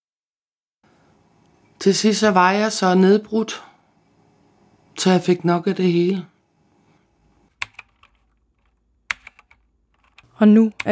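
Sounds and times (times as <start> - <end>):
speech: 1.8 - 3.7, 5.0 - 6.3, 10.4 - 10.8
typing on a computer keyboard: 7.6 - 10.8.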